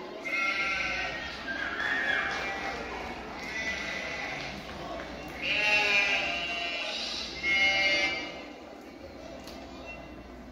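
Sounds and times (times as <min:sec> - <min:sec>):
sheep bleating as they are brought into a house: 0:00.2 - 0:01.4, 0:02.0 - 0:04.6, 0:05.3 - 0:08.5.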